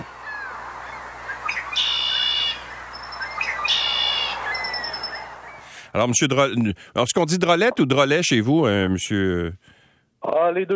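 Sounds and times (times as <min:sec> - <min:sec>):
red-winged blackbird singing: 0:00.0 - 0:05.8
soft outdoor ambience: 0:00.0 - 0:10.7
speech: 0:06.0 - 0:10.7.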